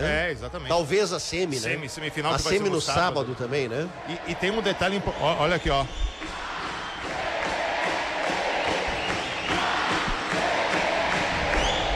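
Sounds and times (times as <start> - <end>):
speech: 0.0 - 6.4
crowd of football club supporters chanting in a stadium: 6.2 - 11.9.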